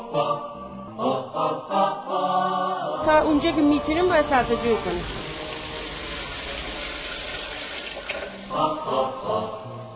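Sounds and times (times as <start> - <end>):
speech: 0.1 - 1.7, 3.1 - 5.2, 8.6 - 9.4
tap water gushing into a well: 3.6 - 8.9.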